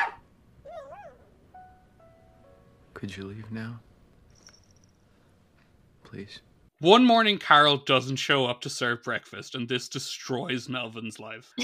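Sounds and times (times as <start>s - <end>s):
dog barking: 0.0s - 0.2s
dog whining high-pitched: 0.0s - 1.4s
speech: 3.0s - 3.9s, 6.1s - 11.6s.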